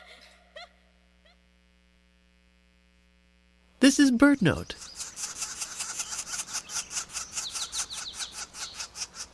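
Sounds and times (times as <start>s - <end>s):
speech: 3.8s - 5.0s
young northern flicker giving rasping scratchy calls from the ground: 4.6s - 9.3s.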